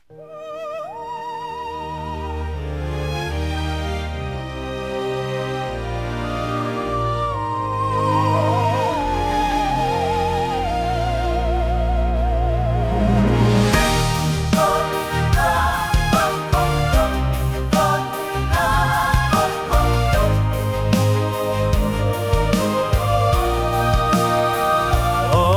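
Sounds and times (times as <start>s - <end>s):
musical anthem: 0.0s - 25.5s.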